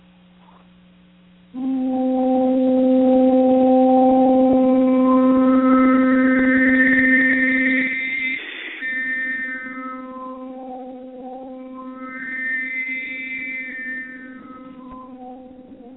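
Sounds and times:
overtone singing on an ooh vowel with harmonics: 0:01.5 - 0:15.9.

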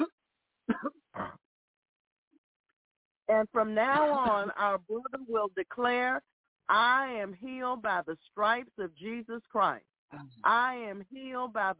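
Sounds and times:
person coughing during a healing prayer: 0:00.7 - 0:01.4
speech: 0:03.3 - 0:11.7.

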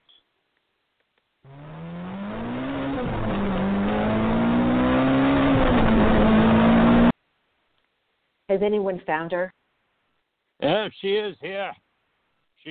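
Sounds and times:
car engine starting and accelerating at an airport: 0:01.5 - 0:07.2
speech: 0:08.6 - 0:09.6, 0:10.6 - 0:11.8.

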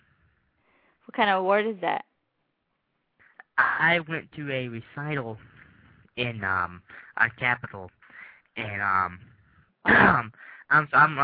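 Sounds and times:
speech: 0:01.1 - 0:02.1, 0:03.6 - 0:05.5, 0:06.2 - 0:08.0, 0:08.6 - 0:11.2
person coughing: 0:09.9 - 0:10.4.

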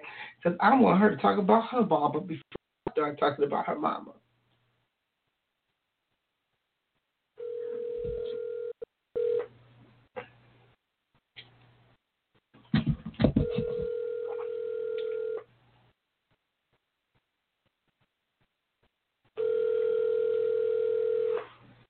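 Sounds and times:
speech: 0:00.4 - 0:04.2
phone ringback tones of an outgoing call: 0:07.4 - 0:09.4, 0:13.4 - 0:15.4, 0:19.4 - 0:21.5.

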